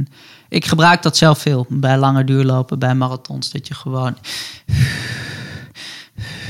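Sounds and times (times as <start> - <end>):
speech: 0.0 - 5.2
airy breathing with a long drawn-out exhale: 4.2 - 6.4.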